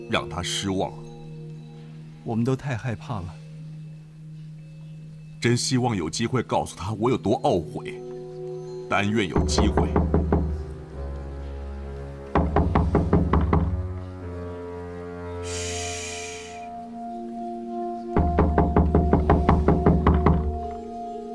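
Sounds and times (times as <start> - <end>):
speech: 0.0 - 1.1, 2.2 - 3.4, 5.4 - 8.1, 8.9 - 10.2
rapid insistent knocking on a door: 9.4 - 10.7, 12.4 - 13.9, 18.2 - 20.6.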